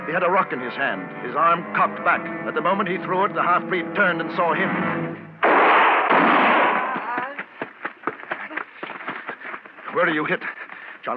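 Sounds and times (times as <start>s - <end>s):
speech: 0.1s - 5.2s, 10.0s - 11.1s
revolver gunshot: 5.4s - 7.0s.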